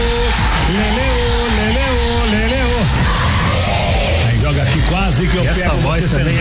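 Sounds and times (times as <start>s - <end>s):
women screaming in a Brazilian TV studio audience: 0.0s - 4.2s
dense constant roar of crowd noise: 0.0s - 6.3s.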